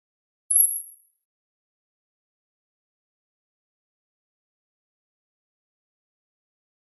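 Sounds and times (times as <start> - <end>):
shimmering electronic chirp: 0.5 - 1.0.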